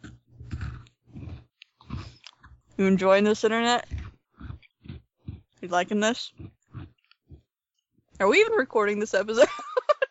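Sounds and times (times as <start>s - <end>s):
crunching and chewing of a peanut butter cookie bar: 0.0s - 7.9s
speech: 2.8s - 4.0s, 5.6s - 6.5s, 8.2s - 9.6s.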